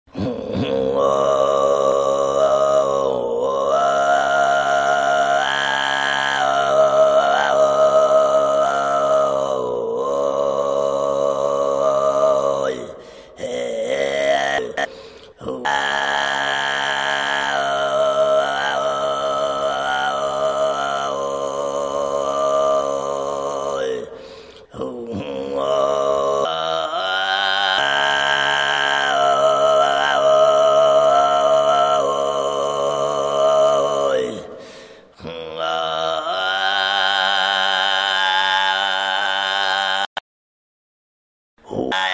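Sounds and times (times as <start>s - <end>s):
kargyraa throat singing: 0.0s - 40.2s, 41.6s - 42.1s.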